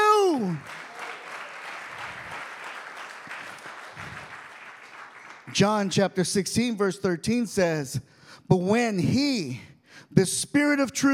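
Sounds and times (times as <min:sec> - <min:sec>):
audience clapping: 0:00.0 - 0:06.2
speech: 0:05.5 - 0:11.1.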